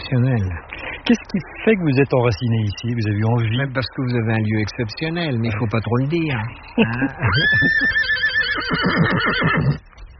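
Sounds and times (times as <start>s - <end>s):
speech: 0.1s - 10.0s
laughter: 0.3s - 4.8s, 5.4s - 8.1s
mare neighing: 6.9s - 9.8s.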